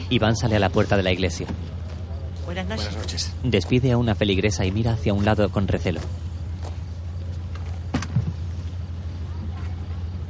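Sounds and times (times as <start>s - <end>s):
car engine idling: 0.0s - 10.2s
speech: 0.1s - 1.9s, 2.5s - 6.3s
car door shutting outside a church at night in Catalonia: 7.6s - 8.5s.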